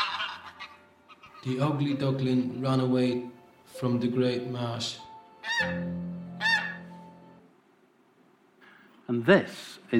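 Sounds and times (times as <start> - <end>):
geese honking: 0.0 - 1.7, 5.4 - 7.1
speech: 1.4 - 6.2, 9.1 - 9.9.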